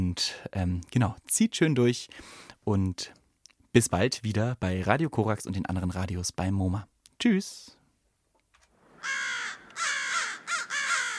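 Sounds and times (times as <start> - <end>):
speech: 0.2 - 7.8
crows cawing: 8.9 - 11.1.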